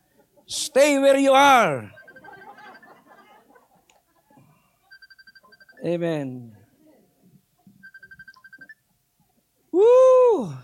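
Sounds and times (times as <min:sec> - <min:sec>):
speech: 0:00.5 - 0:02.0, 0:05.8 - 0:06.6, 0:09.8 - 0:10.6
cell phone ringing with bright short electronic beeps: 0:01.8 - 0:02.9, 0:04.9 - 0:05.9, 0:07.8 - 0:08.8
laughter: 0:01.8 - 0:05.0.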